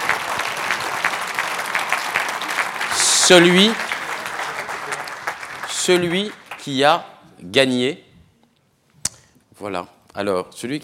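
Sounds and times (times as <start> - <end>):
audience clapping at a prize event: 0.0 - 7.0
speech: 3.3 - 3.8, 5.8 - 8.0, 9.6 - 10.8.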